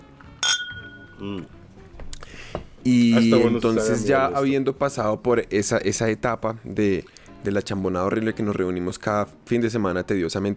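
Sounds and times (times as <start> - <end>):
glasses clinking in a toast with a small glass of water: 0.4 - 1.5
speech: 1.2 - 1.6, 2.4 - 10.5.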